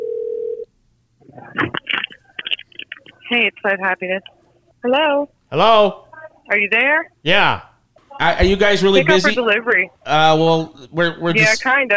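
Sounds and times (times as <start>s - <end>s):
steady telephone dialing tone: 0.0s - 0.7s
speech: 3.3s - 11.9s.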